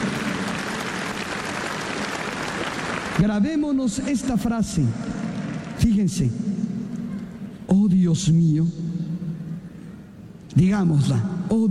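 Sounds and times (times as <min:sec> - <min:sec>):
crowd applauding: 0:00.0 - 0:03.6
speech: 0:03.2 - 0:05.2, 0:05.8 - 0:06.5, 0:07.7 - 0:08.8, 0:10.6 - 0:11.7.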